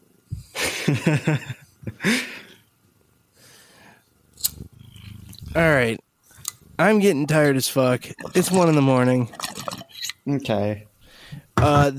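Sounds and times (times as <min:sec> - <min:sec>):
speech: 0:00.9 - 0:02.3, 0:05.6 - 0:06.0, 0:06.8 - 0:09.4, 0:10.3 - 0:10.9, 0:11.6 - 0:11.9
cat purring against the microphone: 0:04.2 - 0:09.8.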